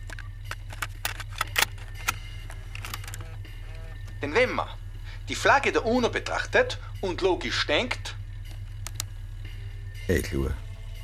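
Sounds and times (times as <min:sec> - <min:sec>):
cassette player clicking as tape starts: 0:00.0 - 0:04.2
cassette player motor humming: 0:00.0 - 0:11.0
speech: 0:04.2 - 0:08.1, 0:10.1 - 0:10.6.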